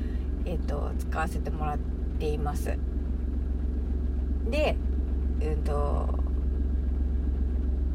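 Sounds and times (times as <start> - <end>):
car interior rumble while driving on a commute: 0.0 - 7.9
speech: 0.5 - 3.0, 4.5 - 6.2.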